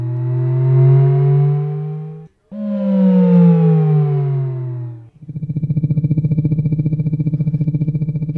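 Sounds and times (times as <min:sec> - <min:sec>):
steady rapidly pulsing buzzy electronic tone: 0:00.0 - 0:08.3
synthetic rising electronic sweeps as car movement cues: 0:00.0 - 0:08.3.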